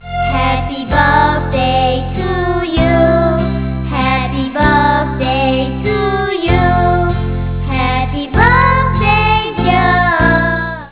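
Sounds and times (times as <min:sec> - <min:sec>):
children: 0:00.0 - 0:10.9.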